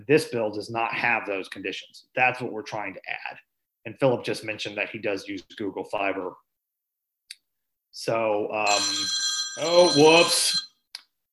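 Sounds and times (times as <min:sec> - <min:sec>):
speech: 0:00.0 - 0:06.4, 0:07.9 - 0:10.6
phone ringtone ringing: 0:08.7 - 0:10.8.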